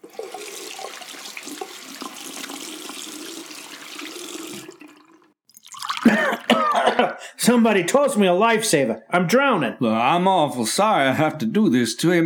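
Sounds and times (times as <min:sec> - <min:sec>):
long steady rush of pouring water: 0:00.0 - 0:06.5
speech: 0:07.5 - 0:12.2.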